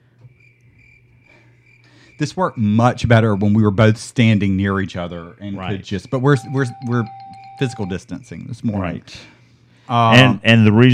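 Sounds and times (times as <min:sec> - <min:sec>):
faint low hum: 0:00.0 - 0:10.9
crickets chirping in a high trill: 0:00.2 - 0:04.0, 0:05.4 - 0:08.7
speech: 0:02.2 - 0:10.9.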